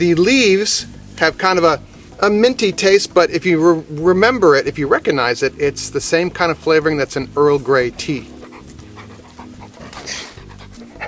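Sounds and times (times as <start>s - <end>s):
speech: 0.0s - 8.4s
dog panting: 6.9s - 11.0s.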